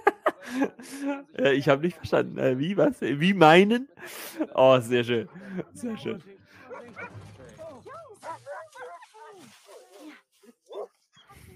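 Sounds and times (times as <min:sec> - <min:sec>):
laughter: 0:00.0 - 0:09.2
speech: 0:00.5 - 0:07.2
German shepherd barking: 0:06.6 - 0:07.2, 0:07.9 - 0:10.1, 0:10.7 - 0:11.0
German shepherd yelping: 0:07.9 - 0:10.1, 0:10.7 - 0:10.9.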